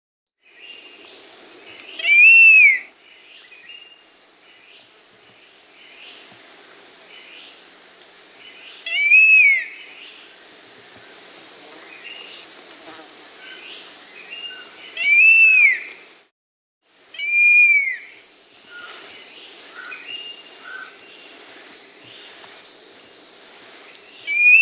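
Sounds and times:
Scaled Fruiteater Ampelioides tschudii calling in the Andes of South America: 1.9 - 4.0, 8.8 - 9.9, 14.3 - 16.0, 17.2 - 21.0, 24.2 - 24.6.

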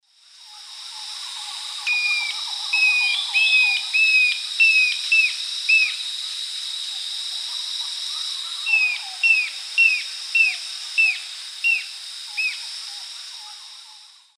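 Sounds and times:
Galbula albirostris call in South American eastern lowlands: 1.4 - 6.0, 8.5 - 12.7.

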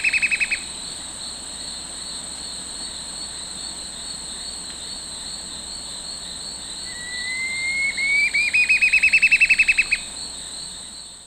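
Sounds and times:
Campylorhamphus procurvoides curve-billed scythebill song in South American eastern lowlands: 6.9 - 10.0.

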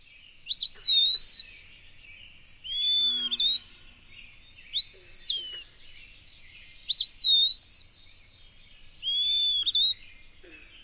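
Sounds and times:
Eastern wood-pewee whistled song: 2.6 - 3.7, 4.7 - 5.6, 6.9 - 7.9, 9.0 - 10.1.

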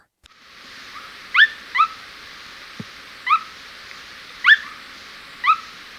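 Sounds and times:
Unicolored Tapaculo calls in Ecuador: 0.3 - 5.9.

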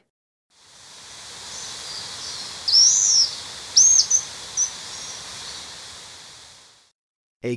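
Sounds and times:
constant insect-like hiss: 0.6 - 6.9
slaty-backed chat-tyrant whistling in Ecuador: 1.5 - 5.6.

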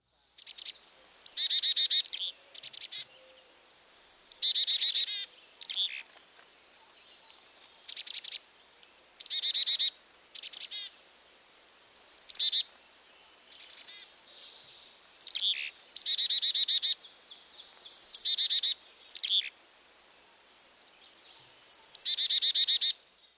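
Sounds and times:
Carolina chickadee calling: 0.4 - 6.1, 9.2 - 11.0, 11.9 - 20.0, 21.1 - 23.1.

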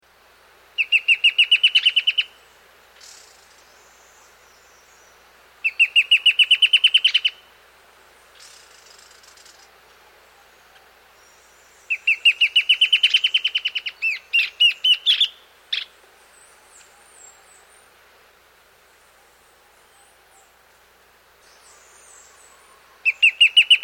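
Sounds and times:
Dusky antbird singing in South America: 0.8 - 7.5, 8.2 - 18.0, 21.4 - 23.8.

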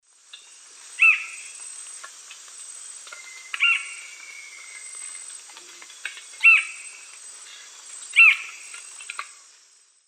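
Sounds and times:
Cercomacra cinerascens call in the South American Eastern Lowlands: 0.3 - 1.6, 3.1 - 9.4.

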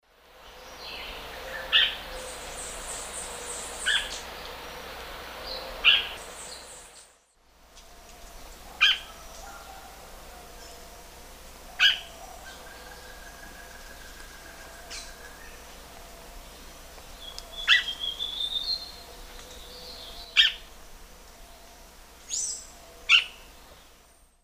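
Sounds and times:
Cercomacra cinerascens calling in the Eastern Lowlands of South America: 0.5 - 7.1, 8.2 - 11.0, 11.6 - 20.8, 21.4 - 23.6.

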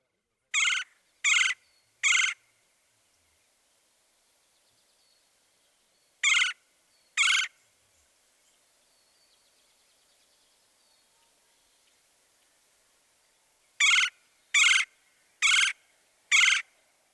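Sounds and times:
red-bellied woodpecker nasal rolling calls: 0.5 - 2.5, 6.2 - 6.6, 7.2 - 7.6, 13.8 - 16.7.

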